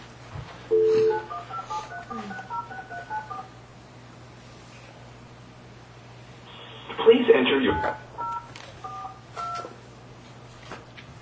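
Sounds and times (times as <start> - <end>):
low electrical hum: 0.0 - 11.2
telephone keypad tones as a number is dialed: 0.7 - 3.5, 7.7 - 9.7
speech: 7.0 - 8.0.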